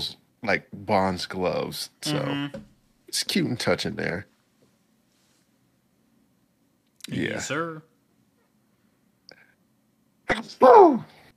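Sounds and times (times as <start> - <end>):
speech: 0.0 - 4.3, 7.1 - 7.9, 10.3 - 11.2
sneeze: 10.3 - 11.2.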